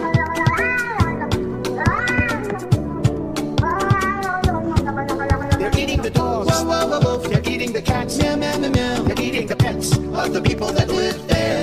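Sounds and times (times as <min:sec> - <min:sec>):
cat meowing in a music remix: 0:00.0 - 0:07.0
electronic music track: 0:00.0 - 0:11.6.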